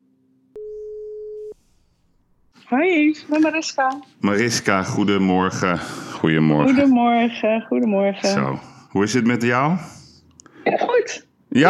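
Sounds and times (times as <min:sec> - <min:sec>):
telephone ringing tone as an outgoing call is placed: 0:00.6 - 0:01.6
speech: 0:02.7 - 0:10.0, 0:10.6 - 0:11.6.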